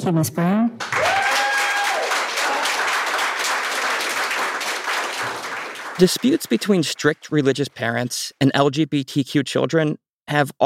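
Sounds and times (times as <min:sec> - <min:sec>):
speech: 0:00.0 - 0:00.9, 0:06.0 - 0:10.6
sustained applause from a sizable audience: 0:00.8 - 0:07.5.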